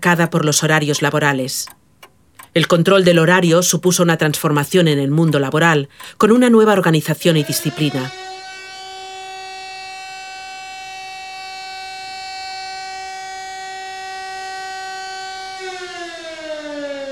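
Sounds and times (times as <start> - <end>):
speech: 0.0 - 1.8, 2.6 - 8.2
factory siren wailing to mark work shift: 0.2 - 1.8, 5.2 - 17.1.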